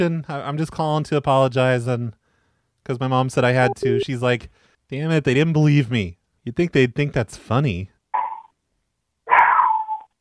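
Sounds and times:
speech: 0:00.0 - 0:02.2, 0:02.8 - 0:07.9
dog barking loudly: 0:09.3 - 0:10.1.

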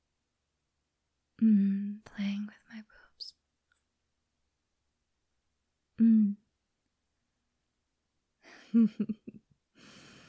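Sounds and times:
breathy sounds and brief voiced bursts: 0:01.4 - 0:02.0, 0:09.8 - 0:10.2
speech: 0:08.7 - 0:09.4
short soft voiced gasp: 0:09.8 - 0:10.2.

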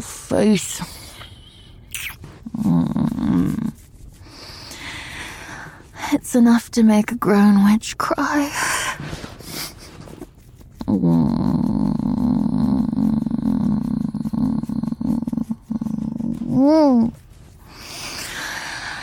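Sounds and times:
speech: 0:00.0 - 0:01.0, 0:06.2 - 0:09.2, 0:16.6 - 0:17.2
person imitating a cat purr: 0:01.9 - 0:03.8, 0:10.8 - 0:19.0.

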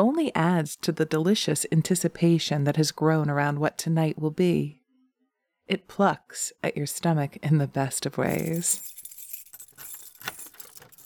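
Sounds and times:
speech: 0:00.0 - 0:04.8, 0:05.7 - 0:08.9
keys jangling while locking a door: 0:08.3 - 0:11.0.

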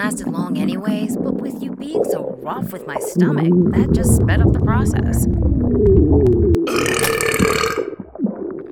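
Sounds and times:
speech: 0:00.0 - 0:01.1, 0:01.8 - 0:06.4
loud long burp: 0:06.6 - 0:08.0.

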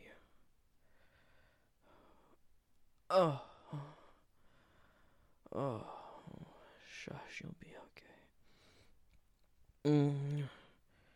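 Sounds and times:
speech: 0:03.1 - 0:04.0, 0:05.5 - 0:06.0, 0:06.9 - 0:07.8, 0:09.8 - 0:10.6
person yawning: 0:03.1 - 0:04.2, 0:09.9 - 0:10.7.

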